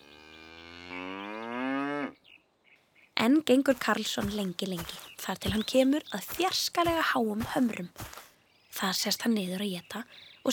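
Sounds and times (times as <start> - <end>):
cow mooing: 0.0 - 2.2
speech: 3.2 - 8.2, 8.8 - 10.5.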